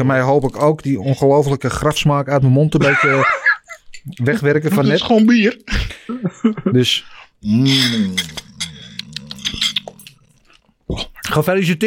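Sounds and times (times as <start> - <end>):
speech: 0.0 - 3.4, 4.0 - 8.4, 10.9 - 11.8
laughter: 2.8 - 5.0, 5.8 - 7.0
crunchy chewing of a bite of snack: 8.0 - 11.3.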